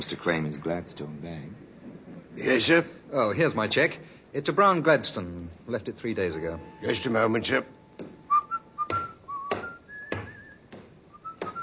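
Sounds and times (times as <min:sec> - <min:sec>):
speech: 0:00.0 - 0:01.7, 0:02.4 - 0:07.8
sharp thumps or knocks: 0:06.6 - 0:11.6
man whistling a wandering tune: 0:08.3 - 0:11.6.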